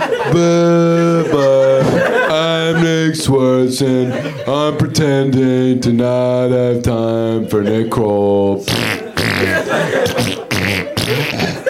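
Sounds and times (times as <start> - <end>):
laughter: 0.0 - 5.8, 6.4 - 11.6
speech: 0.3 - 1.5, 3.2 - 9.0
voice imitating farts: 8.7 - 9.6, 10.2 - 11.6.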